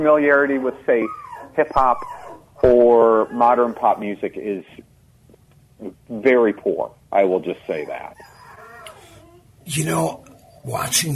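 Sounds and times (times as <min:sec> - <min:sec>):
speech: 0:00.0 - 0:04.9, 0:05.8 - 0:08.3, 0:09.7 - 0:11.1
soft background hum: 0:00.0 - 0:11.1
dog whining: 0:00.9 - 0:04.2, 0:07.7 - 0:11.0.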